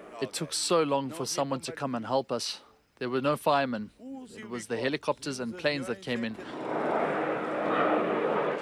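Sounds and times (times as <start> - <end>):
man speaking: 0.0 - 6.4
firefighting aircraft engine roar passing overhead to fight a wildfire in the Odemira area: 6.4 - 8.6.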